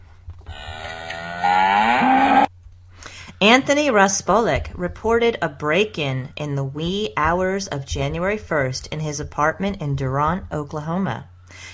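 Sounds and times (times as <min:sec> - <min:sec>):
cow mooing: 0:00.5 - 0:02.5
speech: 0:03.4 - 0:11.7.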